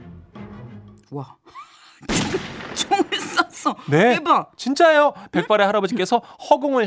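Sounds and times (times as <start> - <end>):
speech: 1.1 - 6.8
loud gunshot with rumbling tail: 2.1 - 3.4.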